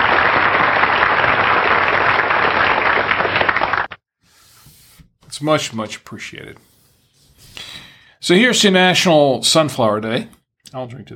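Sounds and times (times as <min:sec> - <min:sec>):
loud dense applause from a crowd: 0:00.0 - 0:04.0
speech: 0:05.4 - 0:06.7, 0:08.2 - 0:11.1.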